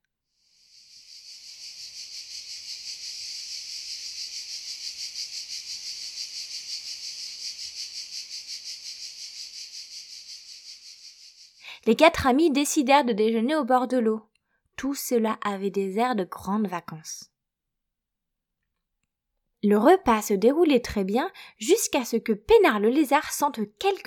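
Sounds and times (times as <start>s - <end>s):
cicadas singing: 0.4s - 11.6s
speech: 11.9s - 17.3s, 19.6s - 24.0s.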